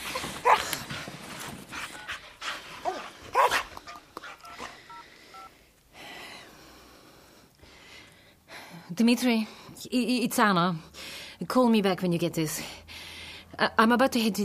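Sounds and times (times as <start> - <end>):
dog barking: 2.9 - 3.7
telephone keypad beeps as a number is dialed: 3.9 - 5.5
speech: 9.0 - 12.8, 13.6 - 14.4.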